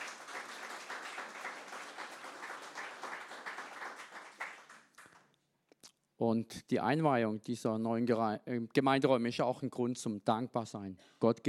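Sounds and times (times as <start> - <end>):
church audience applauding at the inauguration of new audience rooms: 0.0 - 5.3
speech: 6.2 - 11.4.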